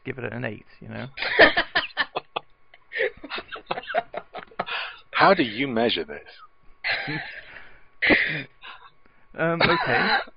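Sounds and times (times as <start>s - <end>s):
speech: 0.1s - 1.7s, 5.2s - 7.4s, 8.0s - 8.6s, 9.3s - 10.3s
laughter: 1.2s - 5.6s, 6.9s - 8.8s, 9.6s - 10.3s
person coughing harshly: 8.0s - 8.5s, 9.6s - 10.3s.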